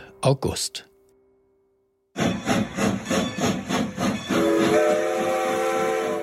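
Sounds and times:
speech: 0.2 - 0.9
steam train chuffing as it pulls away: 2.2 - 6.2.

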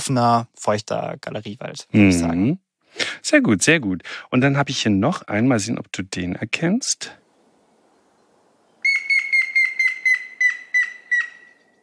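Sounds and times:
speech: 0.0 - 7.2
grey-headed woodpecker calling in wet open riverside alder woodland: 8.7 - 11.8.

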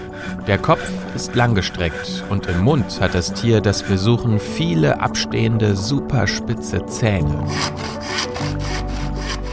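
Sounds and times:
hand saw cutting through wood: 0.0 - 4.2, 7.3 - 9.5
speech: 0.5 - 8.2.

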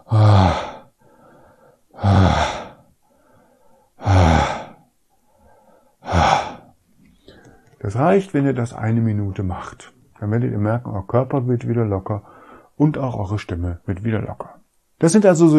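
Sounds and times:
deep breathing during seated relaxation exercise: 0.0 - 7.8, 12.2 - 12.8
speech: 7.9 - 15.5.

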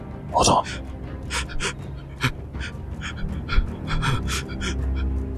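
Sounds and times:
speech: 0.3 - 1.9, 4.3 - 4.9
rapid shallow panicked breathing: 0.3 - 5.2.

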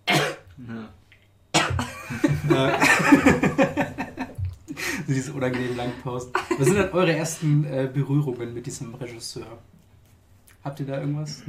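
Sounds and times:
loud harsh cough: 0.0 - 0.5, 1.6 - 2.2
speech: 0.6 - 1.0, 2.1 - 3.4, 5.1 - 9.8, 10.6 - 11.4
laughter: 1.8 - 7.1.

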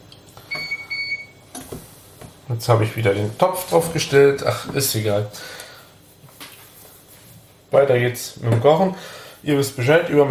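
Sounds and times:
electric stove beeping as its heat setting is raised: 0.5 - 1.8
speech: 2.5 - 5.6, 7.7 - 10.2.

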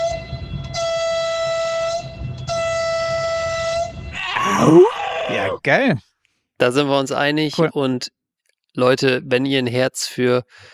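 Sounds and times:
train horn blasts: 0.0 - 4.2
speech: 4.6 - 4.9, 5.5 - 10.7.

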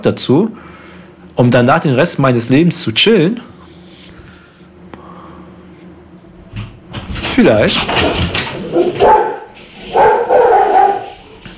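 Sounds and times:
speech: 0.0 - 0.7, 1.4 - 3.5, 7.4 - 9.1
two dogs barking at each other: 7.9 - 11.5.

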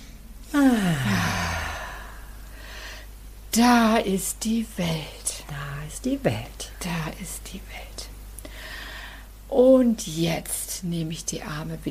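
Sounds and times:
deep breath let out as a loud voiced sigh during a guided arm exercise: 0.5 - 2.3
speech: 3.6 - 8.1, 9.5 - 11.8.

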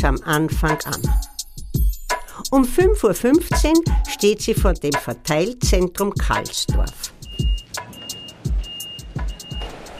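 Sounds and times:
speech: 0.0 - 1.3, 2.5 - 7.2
delivery car engine rumbling at a loading gate of a parcel distribution center: 7.0 - 9.9.

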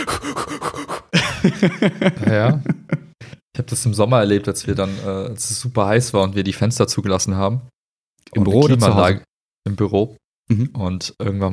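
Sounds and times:
people deliberately hyperventilating in a room with a CO2 monitor: 0.0 - 1.2
laughter: 1.1 - 3.2
speech: 1.4 - 2.7, 3.6 - 7.7, 8.3 - 11.5.

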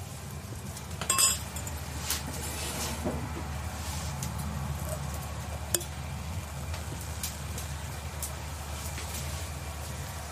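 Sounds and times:
steady low outdoor rumble: 0.0 - 10.2
wine glasses clinking in a toast on a wine farm: 1.1 - 1.4.

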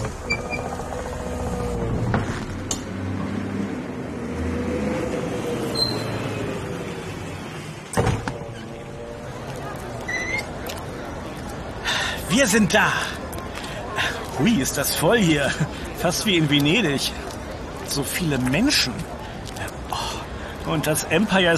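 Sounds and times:
low engine rumble of a tourist double-decker bus driving through New York streets: 0.0 - 21.5
speech: 12.4 - 13.2, 14.4 - 17.2, 17.9 - 19.2, 20.7 - 21.5.

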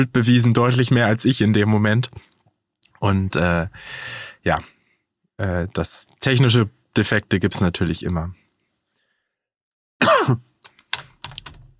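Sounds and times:
speech: 0.0 - 2.3, 3.0 - 4.8, 5.4 - 8.4, 10.0 - 10.5
short stifled cough: 10.0 - 10.5.

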